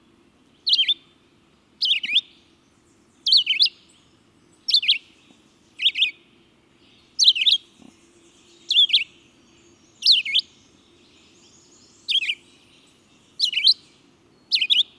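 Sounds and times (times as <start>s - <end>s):
faint low hum: 0.0s - 14.9s
red-eyed vireo song with short varied whistled phrases: 0.6s - 1.1s, 1.8s - 2.4s, 3.1s - 5.2s, 5.8s - 6.2s, 6.9s - 7.7s, 8.4s - 14.9s.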